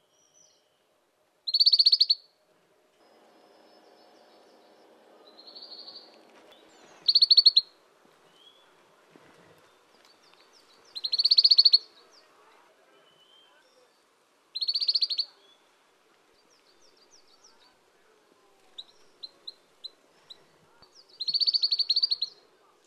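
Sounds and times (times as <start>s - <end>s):
collared bush robin: 1.5s - 2.3s, 3.1s - 14.0s, 14.6s - 15.7s, 18.6s - 22.8s.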